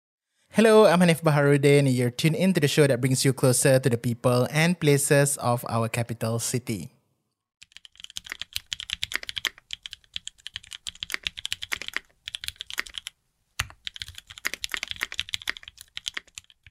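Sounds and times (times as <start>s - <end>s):
speech: 0.6s - 7.0s
fast clacky typing on a mechanical keyboard: 7.6s - 16.6s.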